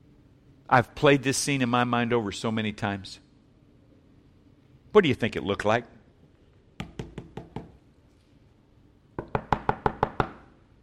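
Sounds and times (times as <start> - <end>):
speech: 0.7 - 3.2, 4.9 - 6.0
heavy knocking on a door: 9.2 - 10.4.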